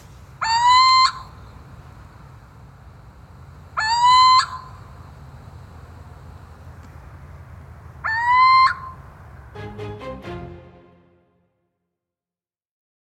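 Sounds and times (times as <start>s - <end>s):
Little owl male territorial call: 0.4s - 1.6s, 3.8s - 4.9s, 8.0s - 9.0s.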